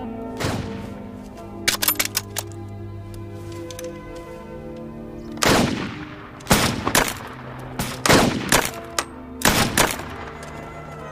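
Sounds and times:
gunshots during shooting practice: 0.4 - 0.9, 5.4 - 10.4.

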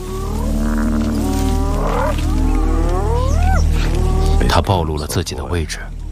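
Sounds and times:
drawn-out tonal cries bending upward in pitch: 0.0 - 4.6
lions growling and moaning while feeding in the wild: 0.0 - 4.7
speech: 4.7 - 6.0.

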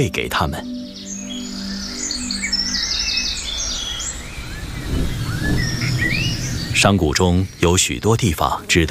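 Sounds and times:
speech: 0.0 - 0.8, 6.8 - 8.9
young fledgling birds chirping in a valley: 0.0 - 8.9
low rumbling noise: 1.2 - 8.2.

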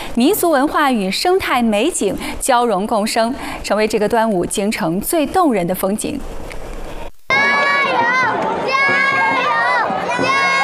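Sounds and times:
speech: 0.2 - 6.4
large crowd cheering and shouting at a dragon boat race: 7.3 - 10.6.

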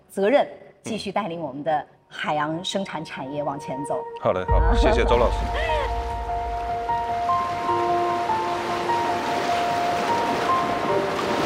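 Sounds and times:
speech: 0.2 - 5.9
ocean waves breaking on a beach at Aojiao Village on Dongshan Island: 6.8 - 11.4.

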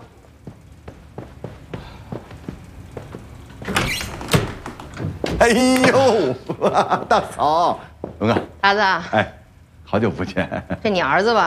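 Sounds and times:
quick footsteps: 0.0 - 6.2, 6.9 - 8.6
door opening with rattling scrape: 3.5 - 6.0
speech: 5.4 - 11.4
laughter: 5.5 - 8.4, 10.2 - 11.1.

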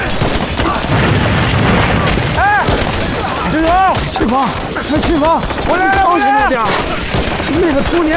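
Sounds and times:
explosion of a thrown bomb: 0.2 - 5.2
speech: 4.3 - 8.1.

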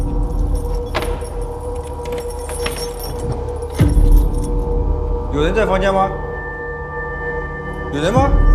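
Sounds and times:
metal keys jingling and clinking: 0.0 - 4.8
lock turning with a heavier clunk on a rented room door: 0.1 - 4.4
speech: 5.4 - 6.2, 7.9 - 8.4.

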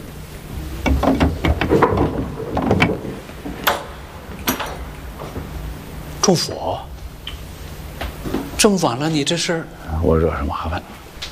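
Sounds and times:
wooden door opening with clunks and rattles: 0.5 - 6.1
sharp knocks or latch clicks: 0.6 - 5.6
speech: 6.3 - 6.9, 8.6 - 11.0.

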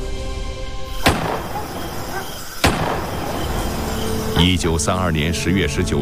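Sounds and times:
pistol gunshots: 1.0 - 4.4
speech: 4.4 - 5.9.

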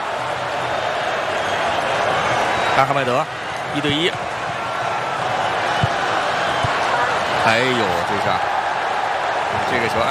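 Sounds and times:
football fans cheering in a stadium: 0.0 - 10.1
speech: 2.8 - 4.3, 7.4 - 8.5, 9.5 - 10.1.

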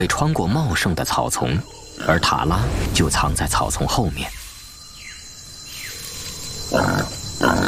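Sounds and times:
speech: 0.0 - 4.4
wild boar grunting: 6.7 - 7.6.

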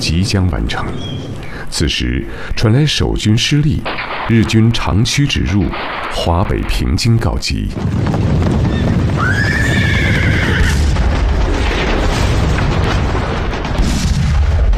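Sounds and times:
speech: 0.0 - 8.4
rumbling artillery cannon fire from the Great Wall near Gubeikou: 0.0 - 14.7
horse whinnying sharply: 8.7 - 10.9.

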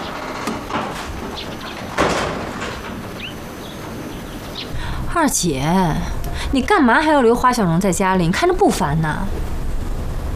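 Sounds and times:
door being closed: 0.0 - 4.8
soft bumps of a door being closed: 0.0 - 4.9
firmer thump of a door being closed: 0.5 - 3.8
speech: 5.2 - 9.5.

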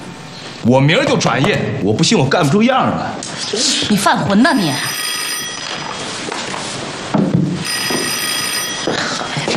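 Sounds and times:
speech: 0.6 - 5.1
telephone ringing in bright buzzing bursts: 4.4 - 6.6, 7.6 - 9.4.

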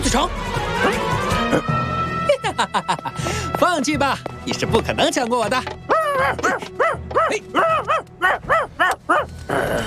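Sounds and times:
speech: 0.1 - 1.7, 2.7 - 9.8
laughter: 2.2 - 3.5
small dog barking and yipping: 5.9 - 9.3.

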